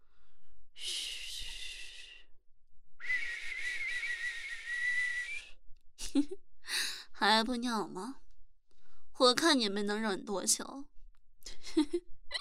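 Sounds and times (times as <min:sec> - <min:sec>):
person whistling: 0:03.0 - 0:05.6
speech: 0:06.1 - 0:06.4, 0:07.2 - 0:08.2, 0:09.2 - 0:10.9.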